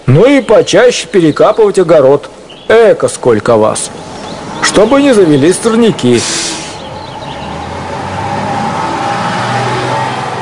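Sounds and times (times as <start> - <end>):
speech: 0.1 - 4.1, 4.7 - 6.6
bus engine rumbling as the bus drives off: 2.3 - 10.4.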